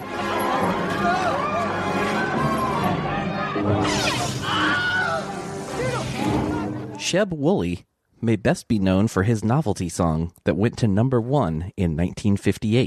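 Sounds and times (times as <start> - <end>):
overlapping shouting voices: 0.0 - 7.0
sharp high-pitched scream stock sound effect: 0.3 - 6.7
speech: 7.1 - 12.8.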